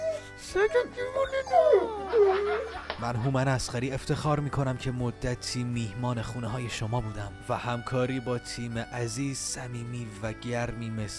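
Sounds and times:
dog whimpering and yipping: 0.0s - 2.9s
speech: 0.5s - 11.1s
laughter: 1.7s - 3.7s.

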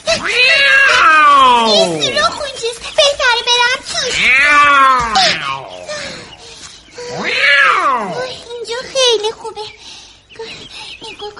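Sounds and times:
quieter rustling: 0.0s - 9.3s
cat meowing while chasing a mouse: 0.1s - 2.3s, 4.1s - 5.8s, 7.1s - 8.4s.

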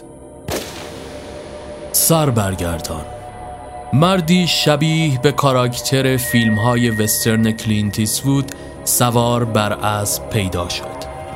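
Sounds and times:
single sharp loud gunshot: 0.5s - 1.7s
speech: 2.0s - 3.2s, 3.9s - 11.1s.

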